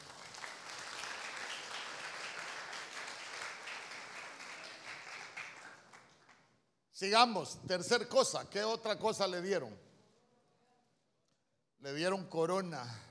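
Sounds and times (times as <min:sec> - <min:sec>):
audience applauding: 0:00.0 - 0:06.4
speech: 0:07.0 - 0:09.9, 0:11.8 - 0:13.0.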